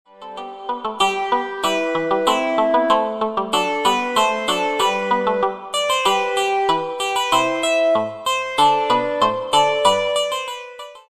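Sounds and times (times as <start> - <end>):
synth lead: 0.2 - 10.9.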